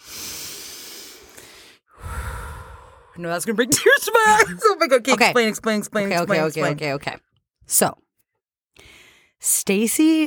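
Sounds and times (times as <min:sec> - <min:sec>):
deep breath in through the nose and out through the mouth: 0:00.0 - 0:03.2, 0:08.8 - 0:09.4
speech: 0:03.2 - 0:08.0, 0:08.8 - 0:10.2
laughter: 0:03.7 - 0:07.0.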